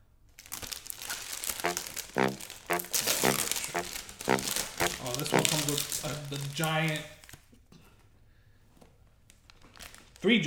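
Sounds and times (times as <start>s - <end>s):
trading card booster pack plastic wrapper crinkling and tearing: 0.4s - 7.5s, 9.3s - 10.2s
speech: 5.7s - 7.2s, 10.2s - 10.4s.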